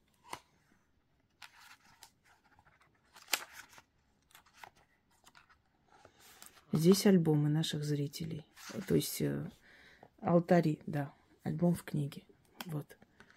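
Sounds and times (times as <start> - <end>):
book pages being flipped: 0.0 - 7.2, 8.4 - 9.2
speech: 6.8 - 9.6, 10.2 - 13.0.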